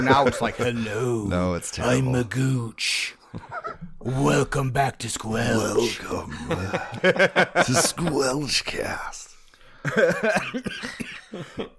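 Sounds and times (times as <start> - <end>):
laughter: 0.0 - 1.5, 3.3 - 4.0, 5.5 - 9.1, 9.8 - 11.7
speech: 0.0 - 9.2, 9.8 - 11.7
person coughing into the microphone: 10.0 - 11.7.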